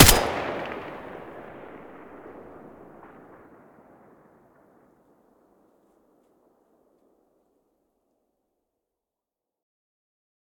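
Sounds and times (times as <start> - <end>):
M4A1 muzzle blast: 0.0 - 1.8.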